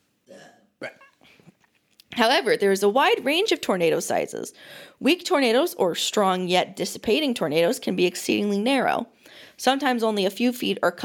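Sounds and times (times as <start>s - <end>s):
person burping: 0.3s - 1.4s
speech: 2.2s - 11.0s.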